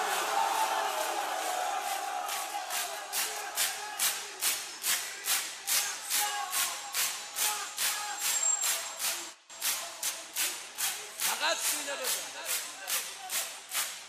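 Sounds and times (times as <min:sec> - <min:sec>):
crowd voices: 0:00.0 - 0:06.9
crowd beating their chests in a mourning ritual: 0:00.0 - 0:14.0.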